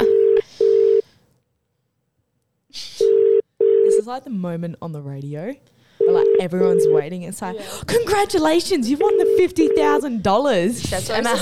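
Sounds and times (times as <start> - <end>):
phone call ringing with electronic tones: 0.0 - 1.1, 3.1 - 4.0, 6.0 - 7.1, 8.9 - 10.1
speech: 4.1 - 11.4.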